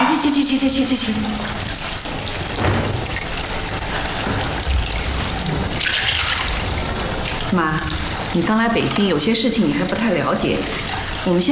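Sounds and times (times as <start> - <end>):
running water from a tap at a sink: 0.0 - 11.5
speech: 0.5 - 1.8, 7.5 - 11.5.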